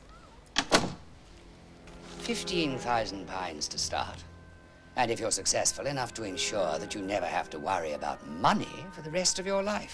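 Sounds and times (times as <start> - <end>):
door shutting: 0.5 - 1.1
speech: 2.3 - 4.3, 5.0 - 9.9.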